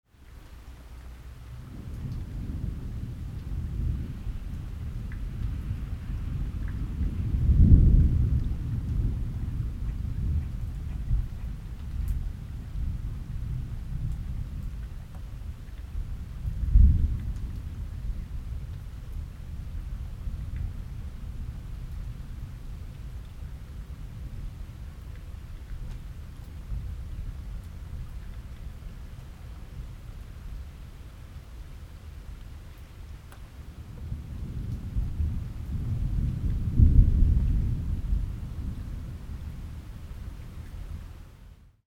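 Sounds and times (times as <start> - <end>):
rain: 0.0 - 41.8
thunder: 1.5 - 24.8, 33.8 - 41.1.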